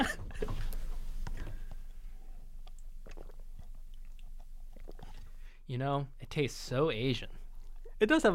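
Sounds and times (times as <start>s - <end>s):
wet gulping swallows while drinking: 0.4s - 5.6s
speech: 5.7s - 7.4s, 8.0s - 8.3s.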